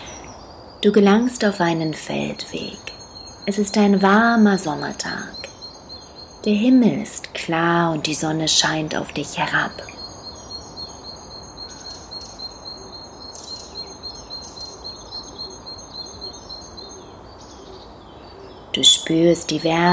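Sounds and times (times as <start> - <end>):
birds chirping on a warm summer day: 0.0 - 19.9
low wash of outdoor ambience: 0.0 - 19.9
speech: 0.8 - 5.5, 6.4 - 10.0, 18.8 - 19.9.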